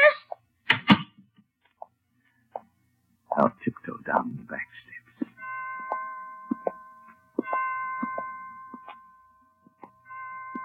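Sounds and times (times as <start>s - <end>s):
speech: 3.4s - 5.0s
hospital chimes striking the hour: 5.3s - 10.6s.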